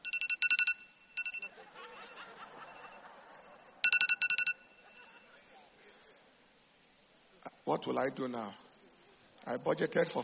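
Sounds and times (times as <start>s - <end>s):
phone alarm ringing during a sermon: 0.0s - 5.4s
crowd chuckling and murmuring: 1.4s - 5.8s
speech: 7.6s - 8.6s, 9.5s - 10.2s.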